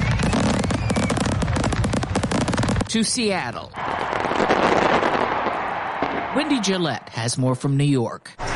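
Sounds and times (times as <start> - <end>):
fireworks at New Year's celebrations in the United States: 0.0 - 6.4
speech: 2.9 - 3.8, 6.4 - 8.4.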